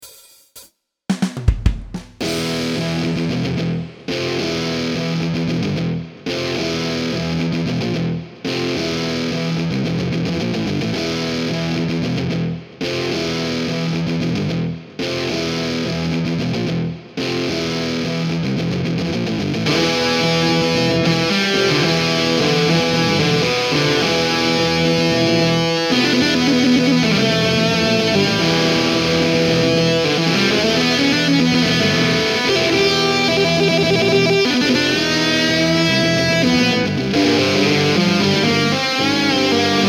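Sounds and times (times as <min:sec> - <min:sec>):
rock guitar: 0:02.2 - 0:39.8.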